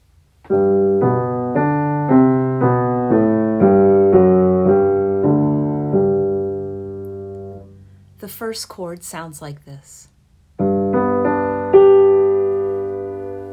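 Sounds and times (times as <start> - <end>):
piano warm-up chords in G major: 0.4 - 8.2, 10.6 - 13.5
speech: 8.5 - 10.2.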